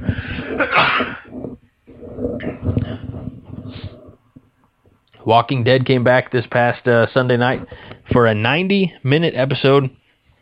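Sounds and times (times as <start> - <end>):
breathy throat and voice noises: 0.0 - 5.0
loud sneeze: 0.4 - 1.3
speech: 0.6 - 1.1, 5.3 - 10.0.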